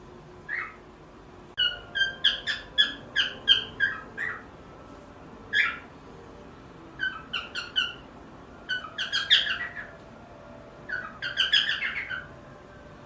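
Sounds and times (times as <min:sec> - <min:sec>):
pearl cockatiel harsh rasping squawks: 0:00.5 - 0:00.8, 0:01.6 - 0:04.5, 0:05.5 - 0:05.9, 0:07.0 - 0:10.0, 0:10.9 - 0:12.4.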